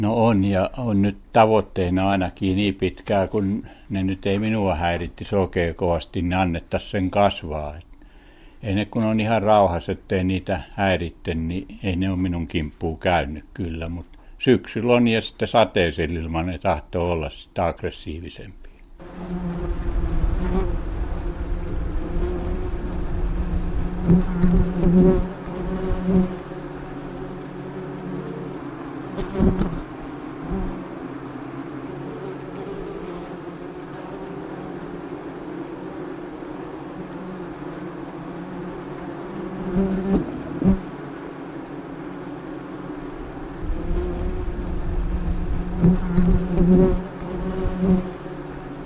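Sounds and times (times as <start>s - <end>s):
speech: 0.0s - 7.9s, 8.6s - 20.7s, 24.1s - 25.4s
many wasps buzzing at nest: 19.0s - 48.8s.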